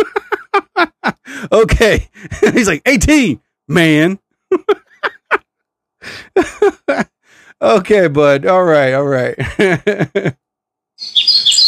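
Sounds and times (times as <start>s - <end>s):
speech: 0.0s - 0.3s, 1.3s - 4.8s, 6.0s - 10.4s
laughter: 0.0s - 2.8s, 4.5s - 5.4s, 6.1s - 7.2s, 9.4s - 10.4s
birds chirping with high-pitched overlapping tweets: 11.0s - 11.6s.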